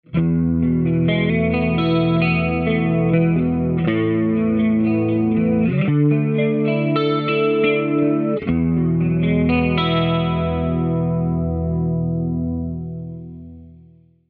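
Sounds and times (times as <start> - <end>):
clean guitar with GT-10 chorus effect: 0.0 - 14.2.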